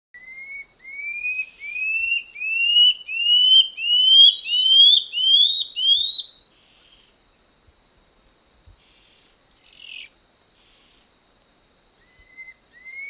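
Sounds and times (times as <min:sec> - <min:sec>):
common scale-backed antbird song of upslurred whistles: 0:00.2 - 0:07.1, 0:12.0 - 0:13.0.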